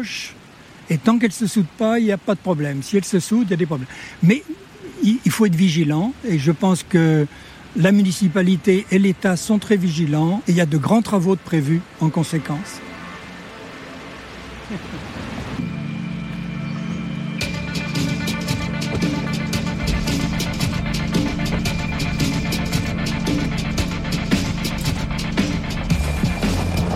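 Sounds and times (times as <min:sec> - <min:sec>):
speech: 0:00.0 - 0:12.9, 0:14.7 - 0:15.1
road noise: 0:00.0 - 0:26.9
car engine droning inside vehicle driving uphill to Bionnay in Saint-Gervais: 0:12.8 - 0:26.9.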